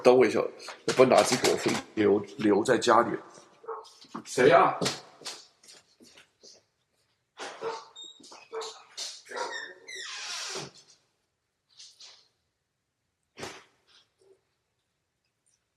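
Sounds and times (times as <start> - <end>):
speech: 0.0 - 3.4, 4.1 - 5.4
several dogs barking fiercely: 3.6 - 4.0, 7.4 - 9.9.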